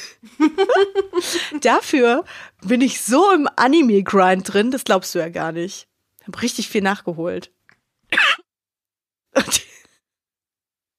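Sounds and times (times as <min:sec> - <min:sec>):
speech: 0:00.2 - 0:08.2
laughter: 0:00.3 - 0:01.6
person coughing: 0:08.1 - 0:08.5, 0:09.4 - 0:09.9.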